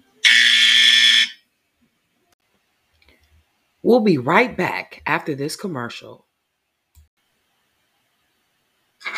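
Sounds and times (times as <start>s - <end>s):
loud harsh electronic buzzer: 0.2s - 1.4s
speech: 3.8s - 6.3s.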